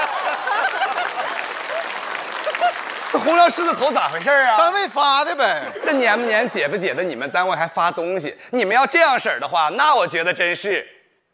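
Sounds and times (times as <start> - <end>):
laughter: 0.0 - 4.5, 5.3 - 7.0
audience applause: 0.0 - 5.4
speech: 3.2 - 11.0.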